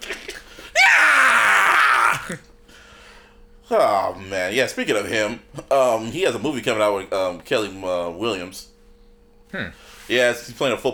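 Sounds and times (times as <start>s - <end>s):
person screaming high-pitched and strained: 0.8s - 2.4s
speech: 2.3s - 2.5s, 3.7s - 8.7s, 9.5s - 10.9s.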